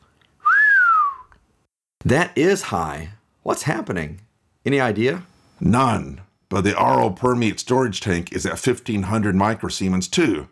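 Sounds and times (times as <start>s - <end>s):
human whistle of surprise: 0.4s - 1.4s
speech: 2.0s - 10.4s.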